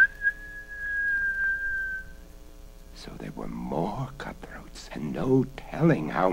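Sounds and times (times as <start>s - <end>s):
shrill human whistle: 0.0s - 2.2s
speech: 3.0s - 6.3s.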